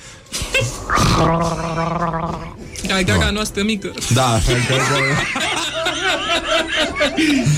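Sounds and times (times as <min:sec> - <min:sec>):
person imitating gargling: 0:00.6 - 0:02.6
speech: 0:00.6 - 0:05.4, 0:06.4 - 0:07.5
laughter: 0:04.4 - 0:07.5.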